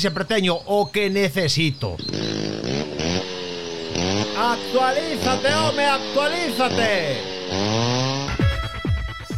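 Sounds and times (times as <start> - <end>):
speech: 0.0 - 2.5, 4.4 - 8.0
chainsaw engine revving: 2.0 - 8.7.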